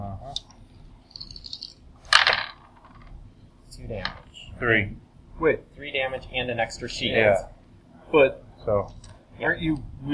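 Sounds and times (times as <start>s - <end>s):
dice rattling: 1.1s - 3.2s
speech: 3.8s - 7.5s, 8.1s - 10.1s.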